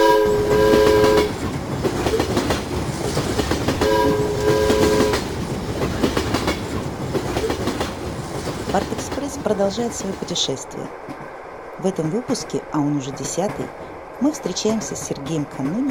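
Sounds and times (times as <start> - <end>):
train horn long loud blasts: 0.0 - 1.4, 3.8 - 5.3
train rolling along with rumbling and rhythmic clatter: 0.0 - 15.8
speech: 9.5 - 11.1, 11.8 - 15.8.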